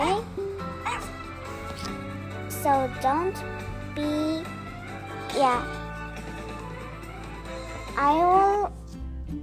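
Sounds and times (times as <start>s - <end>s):
video-game dog bark and yip: 0.8s - 1.2s
speech: 2.6s - 4.2s, 5.4s - 5.8s, 8.0s - 8.8s.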